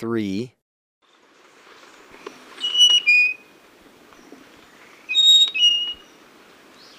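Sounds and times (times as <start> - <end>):
background hiss: 1.1 - 6.9
Spotted Nightingale-Thrush singing in Ecuador: 2.6 - 3.6, 5.0 - 6.2.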